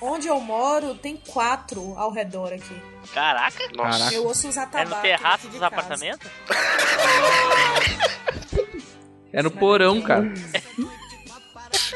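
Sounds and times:
speech: 0.0s - 8.4s, 9.3s - 10.9s
person laughing: 5.5s - 8.9s, 10.2s - 11.9s
harsh coughing: 6.5s - 8.9s, 10.5s - 11.9s.

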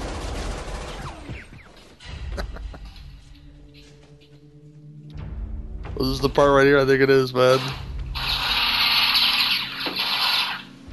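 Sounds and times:
movie gunfire in a shootout: 0.0s - 1.4s, 8.2s - 10.7s
speech: 6.0s - 7.8s.

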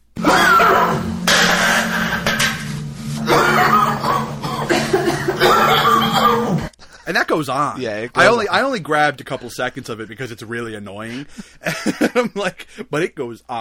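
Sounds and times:
steady low electrical hum: 0.0s - 13.5s
several people coughing in heavy sheetrock dust: 0.2s - 2.2s, 3.2s - 6.7s
laughter: 3.3s - 7.2s, 11.0s - 12.8s
speech: 7.1s - 13.5s.

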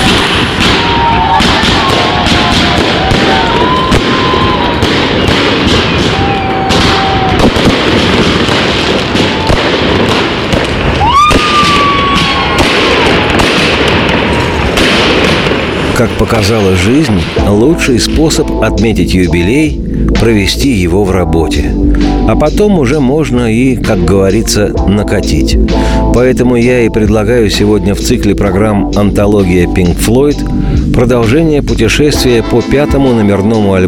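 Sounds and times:
whistling rockets rising: 0.0s - 16.8s
fireworks salute booming bursts and crackling pops: 0.0s - 18.6s
speech: 16.0s - 33.8s.

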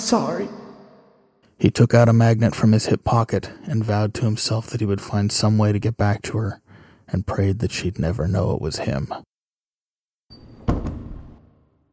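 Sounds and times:
speech: 0.1s - 0.6s, 1.6s - 9.3s
door swinging shut with a scraping rumble and double clunk: 10.4s - 11.6s.

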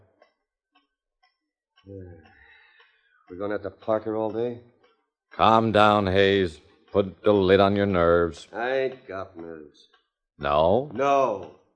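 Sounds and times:
speech: 1.8s - 2.4s, 3.3s - 4.7s, 5.3s - 11.6s
clock in a living room ticking: 1.8s - 4.6s, 5.4s - 9.6s.

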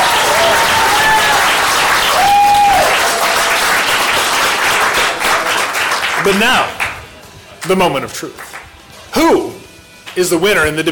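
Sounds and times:
large audience applauding: 0.0s - 7.0s
speech: 6.2s - 6.8s, 7.6s - 8.6s, 9.2s - 9.6s, 10.2s - 10.9s.

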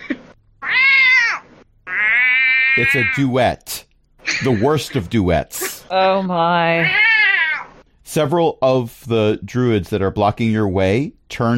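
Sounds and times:
person imitating cat meows: 0.6s - 3.2s, 6.8s - 7.7s
speech: 2.8s - 3.7s, 4.4s - 7.0s, 8.1s - 11.5s.

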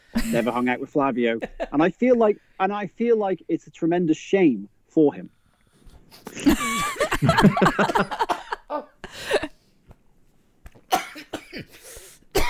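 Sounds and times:
speech: 0.2s - 5.4s, 6.1s - 9.4s
laughter: 1.3s - 1.8s, 6.3s - 9.0s
person coughing: 10.9s - 12.4s.

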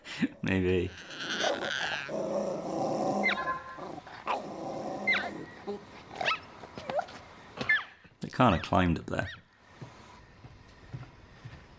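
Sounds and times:
speech: 0.2s - 1.2s, 8.4s - 9.4s
dog growling: 0.7s - 6.3s
dog whining and yelping: 1.0s - 2.1s, 3.2s - 4.4s, 5.0s - 8.0s.

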